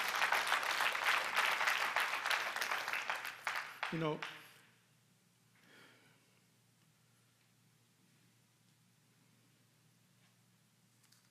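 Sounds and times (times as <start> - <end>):
audience applause: 0.0 - 4.5
speech: 3.9 - 4.4.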